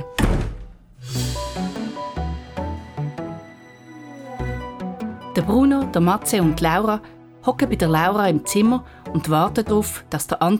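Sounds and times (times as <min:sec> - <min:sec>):
door slamming shut: 0:00.0 - 0:00.9
short melodic piece of music: 0:01.1 - 0:10.0
speech: 0:05.4 - 0:10.5.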